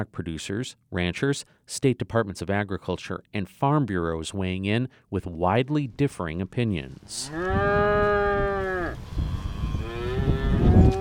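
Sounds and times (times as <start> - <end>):
speech: 0.0 - 8.2
cow mooing on a farm in southwest Missouri: 7.2 - 10.9
gusty wind rumbling on a very windy day on a farm in southwest Missouri: 7.3 - 10.9.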